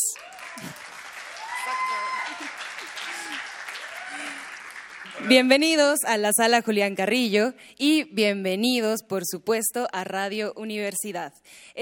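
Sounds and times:
audience applause in a concert hall at a music festival: 0:00.0 - 0:05.7
speech: 0:00.2 - 0:00.8, 0:04.1 - 0:11.7.

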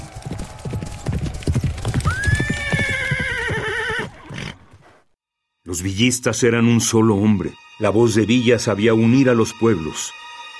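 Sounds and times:
horses galloping with clip-clopping hooves: 0:00.0 - 0:05.0
long horse whinny: 0:02.0 - 0:04.8
speech: 0:05.7 - 0:10.2.

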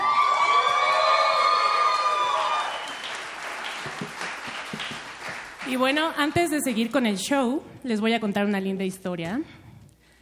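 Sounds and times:
audience cheering at a live show: 0:00.0 - 0:05.2
audience applause at a live big band show: 0:00.0 - 0:06.5
speech: 0:05.7 - 0:09.6.

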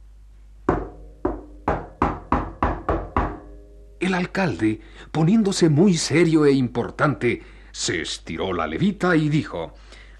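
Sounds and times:
knocking on a door: 0:00.7 - 0:03.5
speech: 0:04.0 - 0:10.0.

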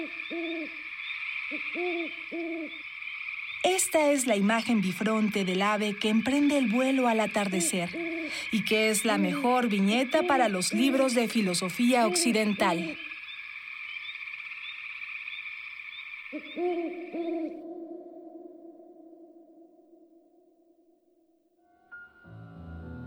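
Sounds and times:
owl hooting: 0:00.0 - 0:21.0
speech: 0:01.5 - 0:02.9, 0:03.6 - 0:13.1.

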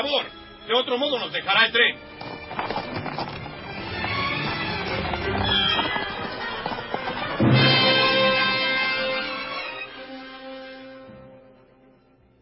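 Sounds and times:
speech: 0:00.0 - 0:03.4
horse-drawn carriage wheels rumbling: 0:02.1 - 0:09.6
horse hooves clip-clopping pulling a carriage: 0:02.1 - 0:09.9.

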